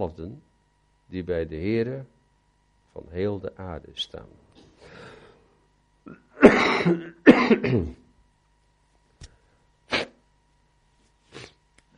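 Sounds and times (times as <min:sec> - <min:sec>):
speech: 0:00.0 - 0:00.5, 0:01.1 - 0:02.2, 0:02.9 - 0:05.1, 0:06.0 - 0:08.0
person coughing rough coughs: 0:06.1 - 0:08.1.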